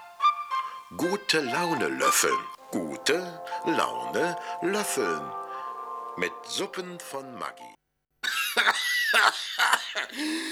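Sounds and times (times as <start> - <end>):
continuous tonal music bed: 0.0 - 7.8
speech: 0.9 - 5.4, 6.2 - 7.7, 10.0 - 10.4
harsh coughs: 8.2 - 10.4.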